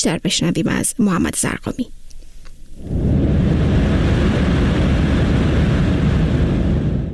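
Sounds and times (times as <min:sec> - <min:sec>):
speech: 0:00.0 - 0:02.0
passenger airplane roaring overhead approaching mountains around airport in Shiraz Iran: 0:02.8 - 0:07.1.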